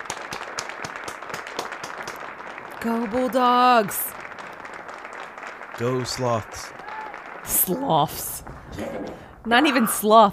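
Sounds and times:
single person clapping hands in a steady quick rhythm: 0.0s - 7.8s
speech: 2.8s - 4.1s, 5.8s - 6.8s, 7.5s - 10.3s.

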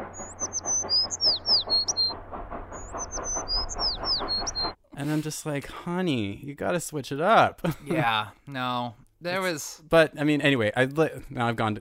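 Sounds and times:
high chirpy bird call sound effect: 0.0s - 4.8s
steady rumbling mechanical background: 0.0s - 4.8s
speech: 5.0s - 11.7s.

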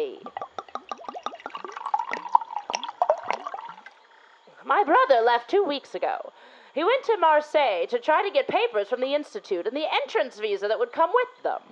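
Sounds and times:
drink poured into a glass: 0.3s - 4.0s
speech: 4.7s - 11.6s.

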